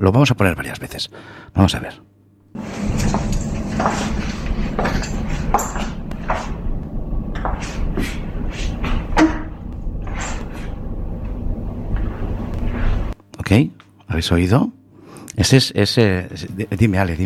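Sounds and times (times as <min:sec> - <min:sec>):
speech: 0:00.0 - 0:04.1, 0:13.5 - 0:14.8, 0:15.4 - 0:17.2
irregular footsteps: 0:02.6 - 0:13.2
steady low rumble: 0:02.6 - 0:13.2
chair being set down on the floor: 0:02.8 - 0:06.6.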